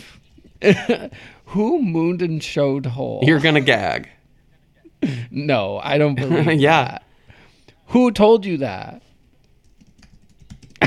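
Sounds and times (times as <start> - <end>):
speech: 0.0 - 4.2, 5.0 - 7.0, 7.9 - 9.0
keyboard typing: 9.3 - 10.8.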